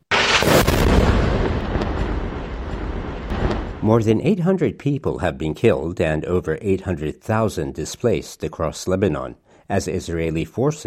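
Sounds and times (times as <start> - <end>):
loud explosion with rumbling roar: 0.0 - 4.1
speech: 3.9 - 10.8.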